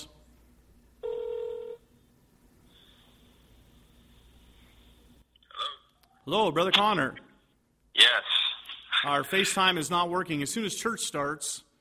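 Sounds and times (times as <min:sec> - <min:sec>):
cell phone ringing with electronic tone during church service: 0:01.0 - 0:01.8
speech: 0:06.3 - 0:07.2, 0:09.0 - 0:11.7.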